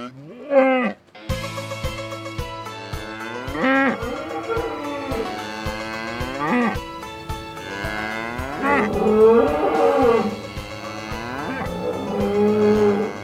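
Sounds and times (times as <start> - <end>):
cattle mooing at a rodeo: 0.0 - 1.0, 2.6 - 13.2
low steady drone: 4.0 - 12.6.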